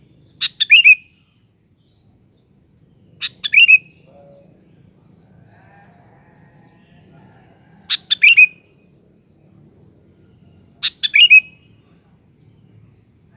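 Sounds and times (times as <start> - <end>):
sooty-headed bulbul singing: 0.0 - 5.3, 7.4 - 9.5, 10.3 - 13.3
faint lower bird calls: 0.0 - 8.9, 10.2 - 13.3.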